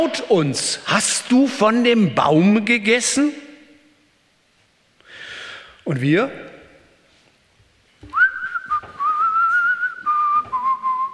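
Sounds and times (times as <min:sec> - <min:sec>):
speech: 0:00.0 - 0:03.4, 0:05.8 - 0:06.5
person whistling a meandering tune: 0:08.1 - 0:11.1.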